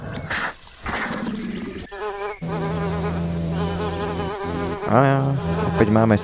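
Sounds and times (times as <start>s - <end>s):
bees buzzing in a game: 1.4s - 6.2s
speech: 4.9s - 6.2s.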